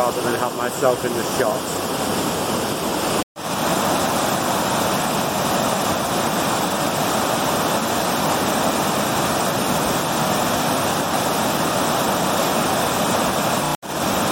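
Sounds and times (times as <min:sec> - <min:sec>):
speech: 0:00.0 - 0:02.2
roar of water pouring down a waterfall: 0:00.0 - 0:14.3.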